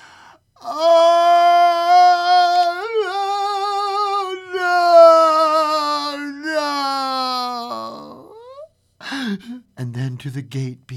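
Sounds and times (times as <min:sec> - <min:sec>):
woman wailing in disappointment and misery: 0:00.7 - 0:08.6
speech: 0:10.2 - 0:10.9.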